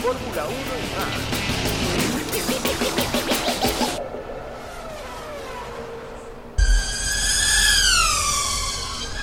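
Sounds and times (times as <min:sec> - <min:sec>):
sharp high motor whine: 0:00.0 - 0:09.2
high-speed camera drone buzzing: 0:00.8 - 0:09.2.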